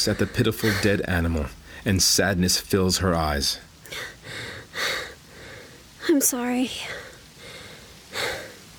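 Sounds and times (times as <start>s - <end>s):
speech: 0.0s - 5.0s, 6.1s - 7.0s
woman panting heavily from hitting a deer with a rock: 0.2s - 1.0s, 3.9s - 5.9s, 6.9s - 8.7s.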